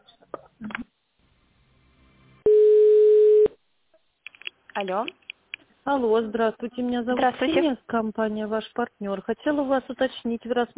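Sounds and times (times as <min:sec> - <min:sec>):
telephone line tone while a call is transferred to a purchasing department: 0:02.4 - 0:03.6
speech: 0:04.8 - 0:05.2, 0:05.8 - 0:10.7.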